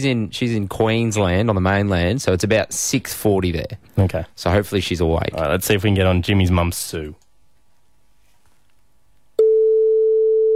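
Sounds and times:
speech: 0:00.0 - 0:07.2
phone line ringing tone: 0:09.4 - 0:10.5.

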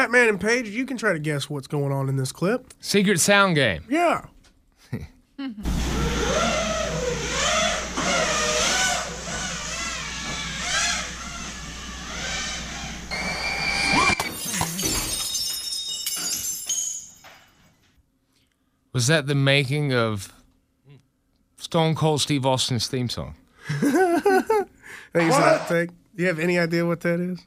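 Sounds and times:
speech: 0:00.0 - 0:06.5, 0:19.0 - 0:20.4, 0:21.6 - 0:27.4
drone flown in a backyard with motor whine: 0:05.6 - 0:14.2
drone crashing through a sliding glass door: 0:14.0 - 0:17.7
scattered tinkling of glass: 0:14.3 - 0:17.7
laughter: 0:23.7 - 0:24.7.

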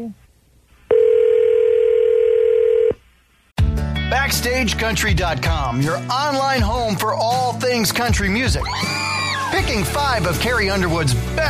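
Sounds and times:
speech: 0:00.0 - 0:00.2, 0:04.3 - 0:11.4
telephone dial tone: 0:00.9 - 0:03.0.

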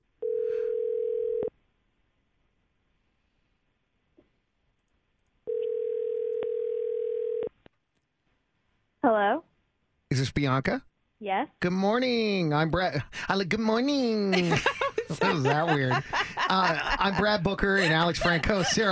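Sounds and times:
ringback tone of an outgoing telephone call: 0:00.2 - 0:01.5, 0:05.5 - 0:07.6
speech: 0:10.2 - 0:18.8
laughter: 0:12.9 - 0:18.8.

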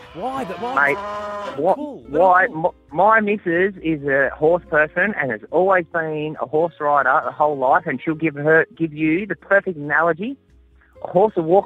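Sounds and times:
cow mooing: 0:00.0 - 0:01.8
speech: 0:00.2 - 0:10.4, 0:11.0 - 0:11.6.

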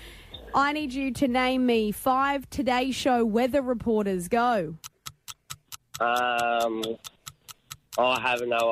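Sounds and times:
speech: 0:00.6 - 0:04.8, 0:06.0 - 0:07.2, 0:08.0 - 0:08.7
10-second countdown timer in a cash quiz game ticking: 0:04.7 - 0:08.7.

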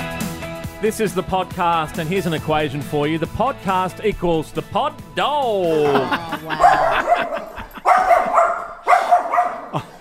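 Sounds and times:
speech: 0:00.8 - 0:07.4
laughter: 0:05.6 - 0:08.8, 0:09.5 - 0:09.9
dog barking in quick yappy bursts: 0:06.6 - 0:09.9.

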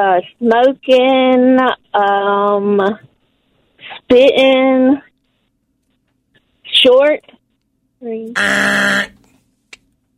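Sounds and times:
speech: 0:00.0 - 0:03.1, 0:04.1 - 0:05.1, 0:06.8 - 0:07.4, 0:08.0 - 0:09.2
voice imitating a game-show buzzer: 0:08.4 - 0:09.2.

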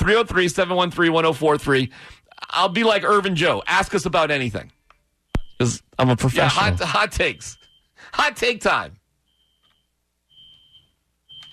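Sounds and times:
speech: 0:00.0 - 0:04.8, 0:05.6 - 0:09.0
fire alarms beeping with high-pitched electronic beeps: 0:06.4 - 0:08.1, 0:09.2 - 0:11.5.

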